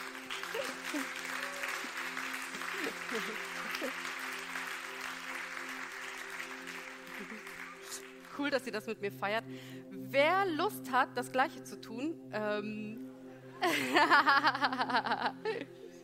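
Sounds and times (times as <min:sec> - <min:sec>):
audience applause: 0:00.0 - 0:08.4
laughter: 0:00.3 - 0:04.4, 0:07.1 - 0:08.0, 0:13.6 - 0:15.7
faint cheers: 0:00.4 - 0:02.1
speech: 0:00.9 - 0:01.2, 0:08.5 - 0:13.0, 0:13.6 - 0:15.7.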